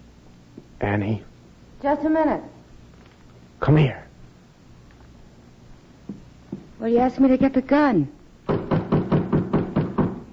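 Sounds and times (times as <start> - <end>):
speech: 0.8 - 2.6, 3.6 - 4.0, 6.8 - 8.2
knocking on a back door: 8.4 - 10.3.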